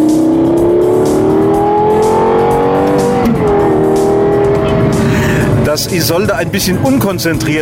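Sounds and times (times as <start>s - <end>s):
Lexus LFA sports car engine pulling away from a street intersection: 0.0s - 5.7s
traffic at an ordinary street intersection: 0.0s - 6.2s
speech: 5.8s - 7.6s.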